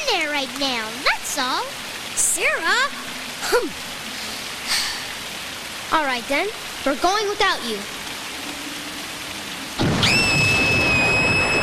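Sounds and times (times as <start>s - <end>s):
heavy rain hiss in a thunderstorm: 0.0s - 11.6s
speech: 0.4s - 1.8s, 2.4s - 3.9s, 5.9s - 8.0s
sustained high whistling tone: 10.0s - 11.6s.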